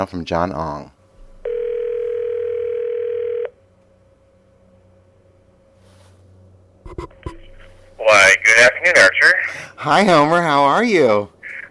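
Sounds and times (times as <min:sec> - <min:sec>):
speech: 0:00.0 - 0:01.0, 0:08.8 - 0:11.4
telephone dial tone while placing a call: 0:01.5 - 0:03.5.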